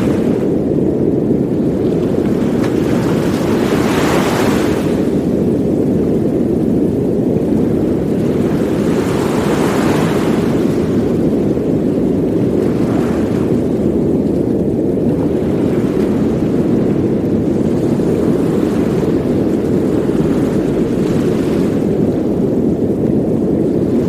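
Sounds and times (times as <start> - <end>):
deep steady brown noise rumble: 0.0 - 24.0
ocean waves washing: 0.0 - 24.0.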